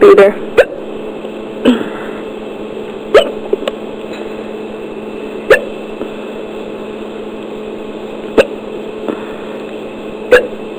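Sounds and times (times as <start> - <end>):
speech: 0.0 - 0.5
hum: 0.0 - 10.7
person hiccuping: 0.1 - 0.8, 1.6 - 2.2, 3.1 - 3.5, 5.5 - 5.8, 8.4 - 9.3, 10.3 - 10.6.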